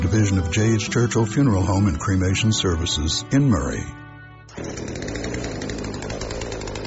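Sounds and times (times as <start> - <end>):
speech: 0.2 - 4.0
chainsaw running: 4.5 - 6.8.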